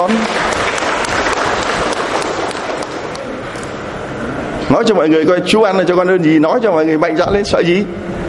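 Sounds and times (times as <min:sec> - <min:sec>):
crowd applause at a religious gathering: 0:00.0 - 0:03.4
speech: 0:04.7 - 0:08.1.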